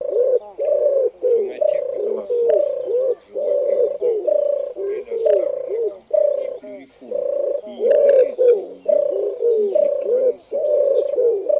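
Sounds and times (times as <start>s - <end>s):
turtle dove: 0.0s - 11.5s
wood pigeon: 0.0s - 11.5s.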